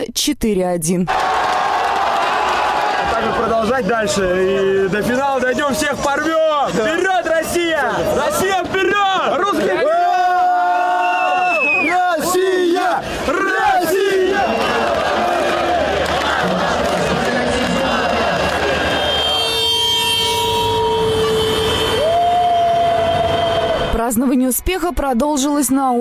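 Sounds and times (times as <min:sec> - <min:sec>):
speech: 0:00.0 - 0:01.3, 0:03.1 - 0:10.0, 0:24.1 - 0:25.9
dense crowd of football fans cheering and shouting in celebration: 0:01.1 - 0:25.9
football fans chanting: 0:11.8 - 0:19.3
wavering horn blasts: 0:18.8 - 0:22.2.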